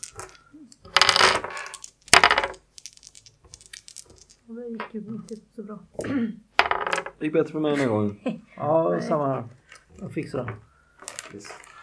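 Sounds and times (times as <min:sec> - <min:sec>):
two dice being rolled on a table: 0:00.0 - 0:05.4, 0:06.6 - 0:07.2, 0:11.0 - 0:11.8
speech: 0:04.5 - 0:06.5, 0:07.2 - 0:10.7, 0:11.3 - 0:11.6.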